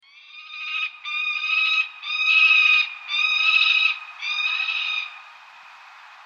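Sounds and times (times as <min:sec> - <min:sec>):
peregrine falcon call: 0:00.0 - 0:05.2.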